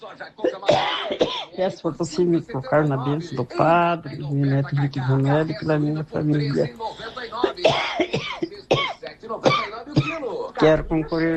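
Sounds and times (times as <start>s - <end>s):
speech: 0.0s - 11.3s
person coughing: 0.4s - 1.6s, 7.4s - 10.3s.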